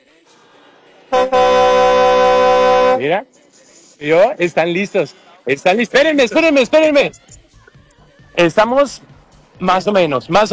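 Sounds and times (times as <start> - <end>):
horn honking: 1.1 - 3.2
speech: 3.0 - 3.4, 4.0 - 7.4, 8.4 - 10.5.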